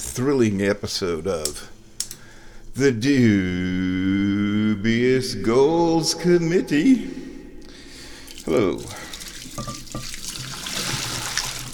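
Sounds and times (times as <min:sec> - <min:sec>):
speech: 0:00.2 - 0:01.7, 0:02.8 - 0:07.2, 0:08.5 - 0:09.0
preheat water pouring out of a teapot: 0:08.2 - 0:11.7.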